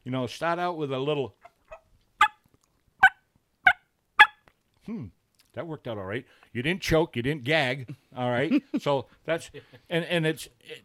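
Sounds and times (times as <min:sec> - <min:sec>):
speech: 0:00.0 - 0:01.5, 0:04.9 - 0:10.8
raspy turkey yelps on a mouth diaphragm call: 0:01.7 - 0:02.4, 0:03.0 - 0:04.4.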